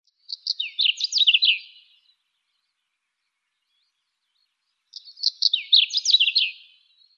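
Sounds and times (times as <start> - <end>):
Saxicola rubicola calling: 0.2 - 2.1, 4.9 - 7.1.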